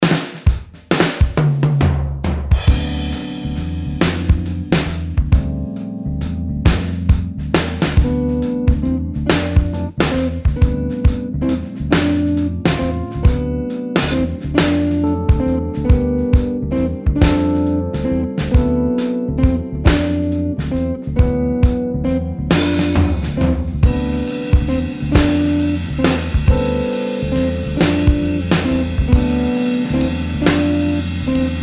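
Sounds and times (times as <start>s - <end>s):
improvised backing music: 0.0s - 31.6s.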